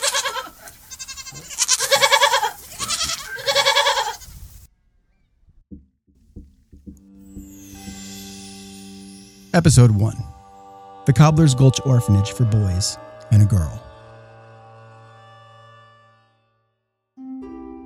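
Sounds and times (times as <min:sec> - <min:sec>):
goats bleating: 0:00.0 - 0:04.4
soft sustained tone: 0:07.1 - 0:16.1
speech: 0:09.6 - 0:10.3, 0:11.1 - 0:13.8.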